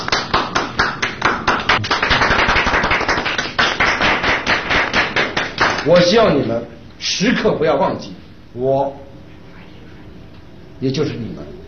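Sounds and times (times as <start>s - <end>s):
audience clapping at a comedy stage show: 0.0s - 5.9s
speech: 5.8s - 9.0s, 10.8s - 11.6s.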